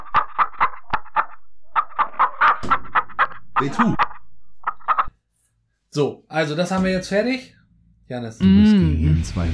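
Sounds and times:
hens clucking in a coop: 0:00.0 - 0:05.2
speech: 0:03.6 - 0:04.1, 0:06.0 - 0:09.5.

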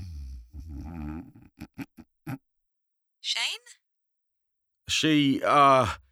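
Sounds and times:
person snoring: 0:00.0 - 0:01.5
speech: 0:03.3 - 0:03.8, 0:04.9 - 0:06.0.

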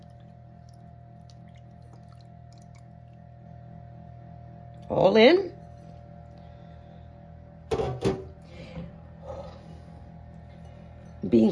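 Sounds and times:
lemon juice splashing and dripping into a food processor: 0:00.0 - 0:03.6
steady low mechanical hum: 0:00.0 - 0:11.4
speech: 0:04.9 - 0:05.5.

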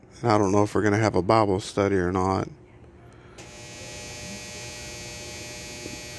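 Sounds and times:
speech: 0:00.2 - 0:02.6
clothes dryer running with electrical hum: 0:03.4 - 0:06.1.

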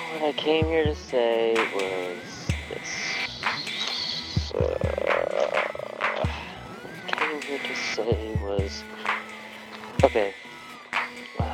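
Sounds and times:
speech: 0:00.1 - 0:03.7, 0:07.3 - 0:09.2, 0:10.0 - 0:10.4
busy outdoor chorus with other calls: 0:02.2 - 0:08.0
toad croaking in low pulsing bursts: 0:02.5 - 0:08.4.

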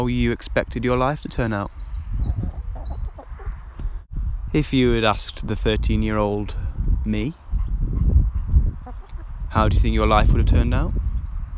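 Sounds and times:
speech: 0:00.0 - 0:02.3, 0:04.5 - 0:07.4, 0:09.5 - 0:11.0
hens clucking softly: 0:02.2 - 0:03.8, 0:07.4 - 0:09.4.

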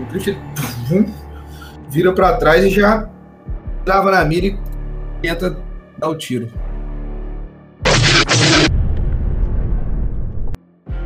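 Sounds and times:
speech: 0:00.1 - 0:01.3, 0:01.9 - 0:03.2, 0:03.8 - 0:04.6, 0:05.2 - 0:06.7
starfighter exploding in a space combat video game: 0:07.9 - 0:10.5.

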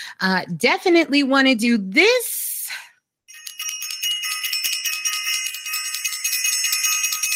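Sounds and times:
speech: 0:00.1 - 0:02.8
bicycle-style bell ringing rapidly: 0:03.3 - 0:07.3.

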